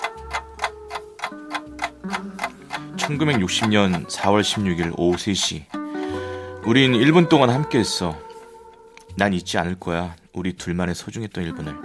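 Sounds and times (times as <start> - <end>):
wristwatch ticking: 0.0 - 5.8
low hum of music: 0.0 - 11.8
speech: 3.1 - 5.8, 6.6 - 8.3, 9.2 - 11.8.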